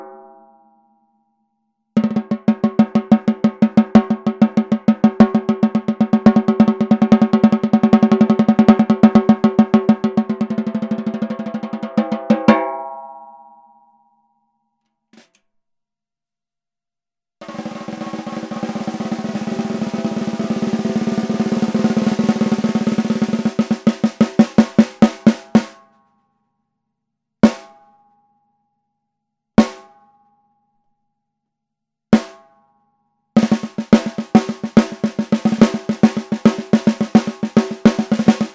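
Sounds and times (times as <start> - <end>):
aluminium 14x5 snare drum: 2.0 - 12.6, 17.5 - 25.8, 27.5 - 27.7, 29.6 - 29.9, 32.1 - 32.4, 33.4 - 38.5.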